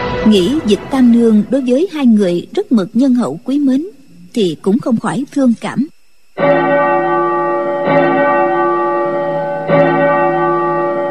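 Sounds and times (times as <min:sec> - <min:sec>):
speech: 0:00.2 - 0:07.0
temple bell struck and ringing: 0:06.2 - 0:11.1.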